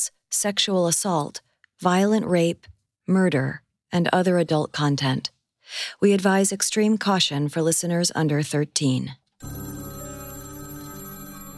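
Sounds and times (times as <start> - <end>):
speech: 0.0 - 9.7
telephone ringing: 9.4 - 11.5.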